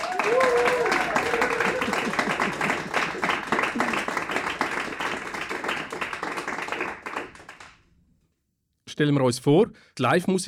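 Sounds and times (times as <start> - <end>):
audience applauding: 0.0 - 7.8
laughter: 0.4 - 4.3
speech: 9.0 - 10.4.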